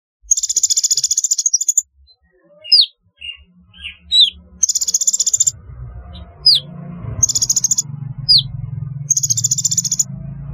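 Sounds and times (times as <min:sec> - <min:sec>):
sunbird chirping: 0:00.3 - 0:10.1
low rumbling noise: 0:03.1 - 0:10.5.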